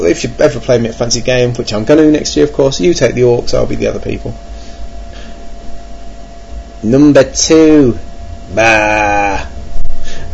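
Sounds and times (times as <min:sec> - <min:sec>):
speech: 0:00.0 - 0:04.5, 0:06.8 - 0:09.5
person imitating a sheep bleat: 0:08.5 - 0:09.6.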